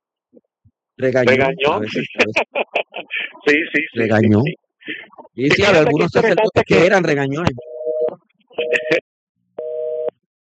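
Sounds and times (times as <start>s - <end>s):
speech: 1.0s - 4.6s, 5.4s - 7.7s
laughter: 1.3s - 7.0s, 8.6s - 9.0s
telephone busy tone after a dropped phone call: 9.6s - 10.1s.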